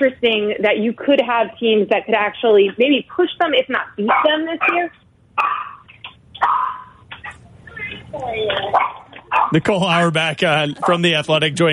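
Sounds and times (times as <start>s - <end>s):
speech: 0.0s - 5.6s, 7.9s - 11.7s
dog barking with whiny yelps: 4.1s - 7.0s, 8.7s - 9.6s.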